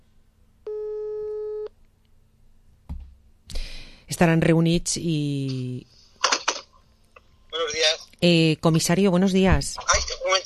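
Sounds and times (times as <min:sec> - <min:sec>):
telephone line tone while calling someone: 0:00.7 - 0:01.7
speech: 0:04.2 - 0:05.9, 0:08.2 - 0:10.0.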